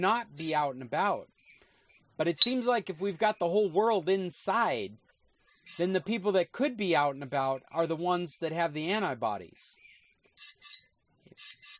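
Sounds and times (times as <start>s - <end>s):
speech: 0.0s - 1.6s, 2.2s - 9.8s
electronic beeps: 0.2s - 0.6s, 1.4s - 1.6s, 2.4s - 2.8s, 5.4s - 6.0s, 9.8s - 11.7s.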